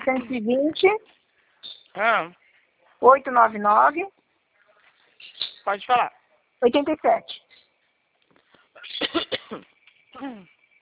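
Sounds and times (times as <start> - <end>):
speech: 0.0 - 1.2, 2.0 - 2.4, 3.0 - 4.2, 5.6 - 7.3, 9.5 - 10.5
harsh coughs over a phone line: 8.8 - 9.7
voiced throat sound: 8.8 - 10.6.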